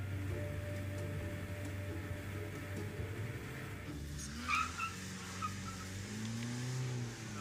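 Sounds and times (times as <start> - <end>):
car engine laboring up a road on the Mombacho volcano: 0.0 - 7.3
rough road noise: 0.0 - 7.3.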